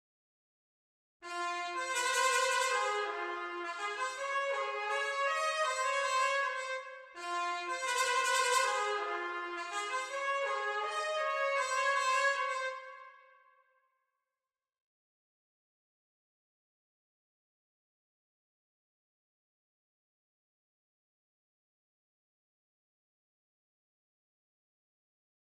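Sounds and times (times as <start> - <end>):
B-flat trumpet playing: 1.2 - 13.2.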